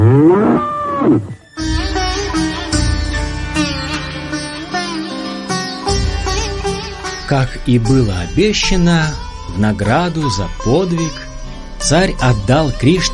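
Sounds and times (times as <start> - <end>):
bull mooing: 0.0 - 1.4
music: 1.3 - 13.1
speech: 7.3 - 13.1.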